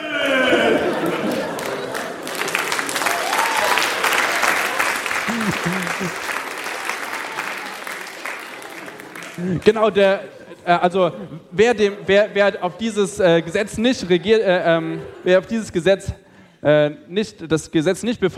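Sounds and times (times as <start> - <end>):
scattered shouts: 0.0 - 1.3
crowd of people in a role-play roaring and yelling, imitating lions: 0.0 - 2.3
laughter: 0.0 - 7.6, 8.6 - 16.2
people clapping: 0.2 - 10.0
speech: 9.4 - 18.3.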